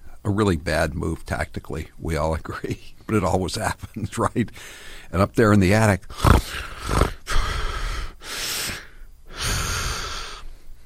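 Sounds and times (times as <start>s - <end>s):
speech: 0.3s - 7.2s
voice imitating sniffing someone's hair: 6.1s - 10.5s.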